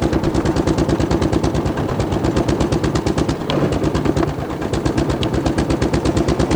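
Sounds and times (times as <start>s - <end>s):
old Sizaire car engine: 0.0s - 6.5s.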